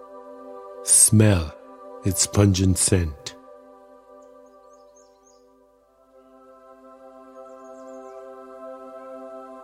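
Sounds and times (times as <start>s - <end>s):
speech: 0.8s - 3.3s
birds twittering: 4.1s - 5.6s, 7.2s - 8.5s.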